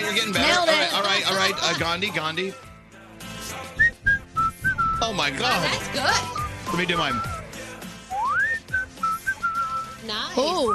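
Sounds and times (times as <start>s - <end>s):
speech: 0.1s - 2.7s, 5.0s - 7.3s, 10.0s - 10.7s
person whistling a short tune: 3.8s - 5.2s, 6.1s - 10.7s.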